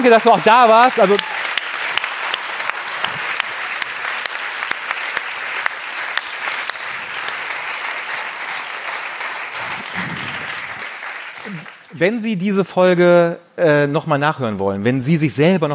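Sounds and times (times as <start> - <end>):
speech: 0.0 - 1.4, 12.0 - 15.7
live audience applause at the close of a show: 0.0 - 12.0.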